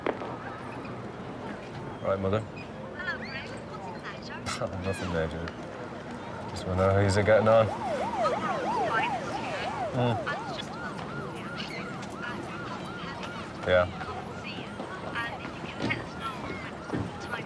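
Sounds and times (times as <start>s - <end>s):
street noise: 0.0s - 17.4s
speech: 2.0s - 2.7s, 4.6s - 5.6s, 6.5s - 8.5s, 10.0s - 10.4s, 13.6s - 14.0s
police patrol car siren wailing: 5.9s - 17.4s.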